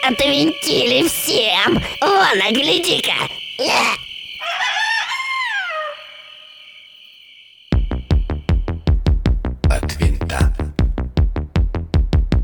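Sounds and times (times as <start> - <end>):
speech: 0.0 - 4.0
rooster crowing: 3.4 - 7.3
sharp regular thumping beats: 7.8 - 12.4.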